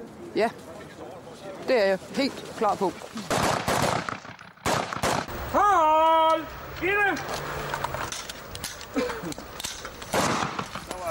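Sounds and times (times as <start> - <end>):
speech: 0.4 - 0.8, 1.6 - 3.6, 6.4 - 7.8
gunshots at a shooting range: 3.3 - 5.4, 10.1 - 10.9.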